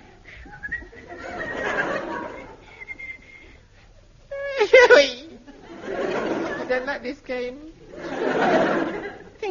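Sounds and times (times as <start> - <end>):
explorer whistling a cheerful bouncy tune in a jungle clearing: 0.4 - 1.0, 2.8 - 3.5
laughter: 0.9 - 2.8, 4.5 - 7.0, 7.9 - 9.4
speech: 6.8 - 8.8.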